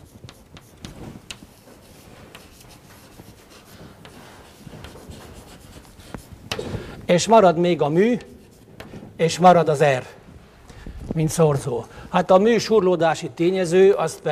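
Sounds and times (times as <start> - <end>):
chalk or marker scratching on a board while writing a formula: 0.0 - 6.6, 7.9 - 9.1
speech: 7.1 - 8.3, 9.2 - 10.2, 11.2 - 14.2.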